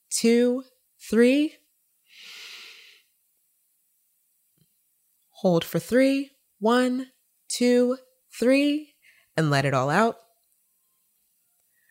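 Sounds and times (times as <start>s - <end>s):
speech: 0.2s - 1.6s, 5.4s - 10.2s
deep breath in through the nose during a guided breathing exercise: 2.1s - 3.1s.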